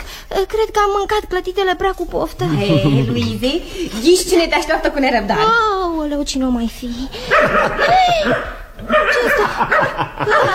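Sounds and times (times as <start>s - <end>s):
speech: 0.3s - 10.5s
laughter: 2.4s - 3.6s, 7.2s - 10.5s
small dog yapping and yipping excitedly: 7.3s - 10.5s.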